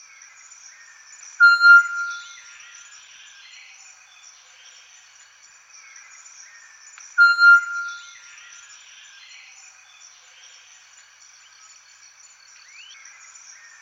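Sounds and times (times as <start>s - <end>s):
solitary tinamou calling: 1.4s - 2.2s, 7.2s - 8.0s.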